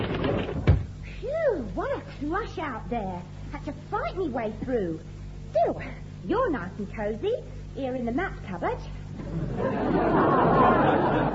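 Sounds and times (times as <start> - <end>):
office door thud while being opened: 0.0 - 0.9
low noise: 0.0 - 11.3
speech: 2.2 - 11.2
laughter: 9.2 - 11.3.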